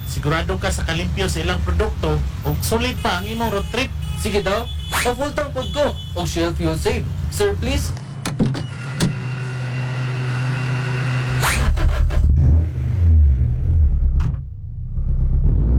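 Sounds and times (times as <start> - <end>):
car driving fast with engine drone: 0.0 - 5.7, 6.3 - 15.7
speech: 0.2 - 8.0
sharp whooshing swish: 11.4 - 11.8.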